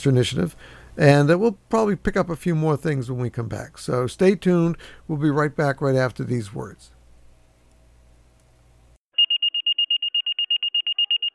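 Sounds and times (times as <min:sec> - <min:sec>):
speech: 0:00.0 - 0:07.0
fire station dispatch alert tones of high-pitched electronic beeps: 0:09.2 - 0:11.3.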